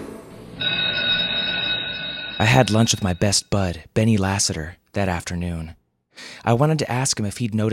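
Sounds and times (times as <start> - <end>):
school bell ringing for end of class: 0.3 - 3.4
speech: 2.4 - 7.7.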